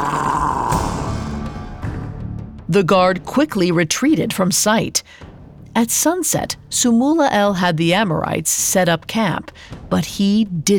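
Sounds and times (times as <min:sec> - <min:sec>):
man growling menacingly: 0:00.0 - 0:01.4
speech: 0:02.7 - 0:05.2, 0:05.8 - 0:10.7.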